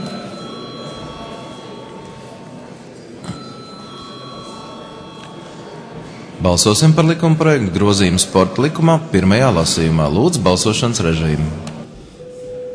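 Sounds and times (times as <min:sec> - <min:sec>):
electric bell ringing in a parliament chamber before a vote: 0:00.0 - 0:07.3
low murmur of room noise in a parliament chamber: 0:00.0 - 0:12.7
speech: 0:06.4 - 0:11.7.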